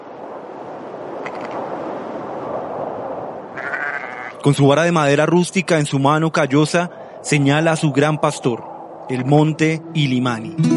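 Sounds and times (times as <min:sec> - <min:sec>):
outdoor noise: 0:00.0 - 0:09.9
sheep bleating: 0:03.5 - 0:04.4
speech: 0:04.4 - 0:10.7.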